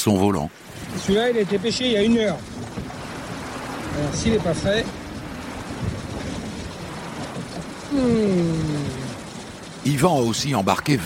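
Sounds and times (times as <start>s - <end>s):
speech: 0.0s - 2.5s, 4.0s - 5.0s, 7.9s - 9.0s, 9.8s - 11.0s
rain and wind squall at sea: 0.0s - 11.0s.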